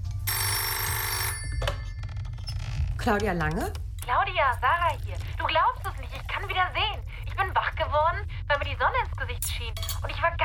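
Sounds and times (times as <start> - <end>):
low hum: 0.0 - 10.4
electronic telephone ringing at a breakfast table: 0.1 - 2.4
speech: 3.0 - 10.4.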